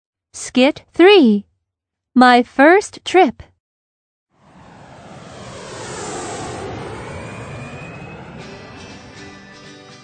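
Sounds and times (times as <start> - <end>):
speech: 0.4 - 1.5, 2.2 - 3.5
airplane roaring overhead: 4.4 - 10.0
whining airplane engine tone: 4.4 - 10.0.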